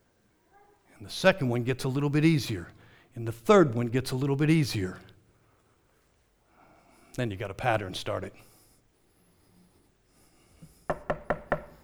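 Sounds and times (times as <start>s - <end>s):
speech: 1.0s - 5.1s, 7.2s - 8.5s
firm knocks on a wooden bedroom door: 10.9s - 11.8s.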